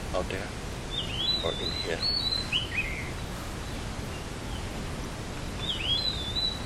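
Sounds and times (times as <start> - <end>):
outdoor hiss of wind or rustling: 0.0 - 6.6
speech: 0.2 - 0.6, 1.4 - 2.6
high bird chirps: 0.9 - 4.7, 5.6 - 6.6.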